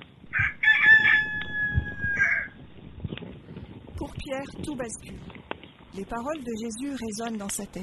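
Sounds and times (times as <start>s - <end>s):
rooster crowing at dawn: 0.3s - 2.6s
speech: 4.2s - 7.8s.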